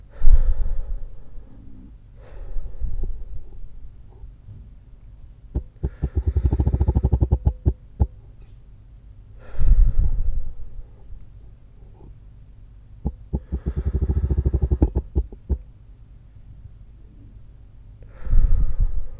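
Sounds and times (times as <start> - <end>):
slow breathing during a guided breathing exercise: 0.0 - 4.4, 5.6 - 7.6, 9.4 - 12.2, 13.1 - 15.6, 18.0 - 19.1
sharp buzzing taps from a smartwatch vibrating on the wrist: 5.6 - 8.2, 13.0 - 15.6.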